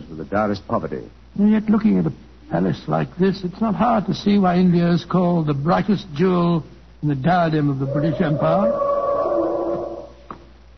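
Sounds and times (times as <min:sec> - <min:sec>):
speech: 0:00.2 - 0:08.9
elephant trumpeting: 0:07.7 - 0:10.3.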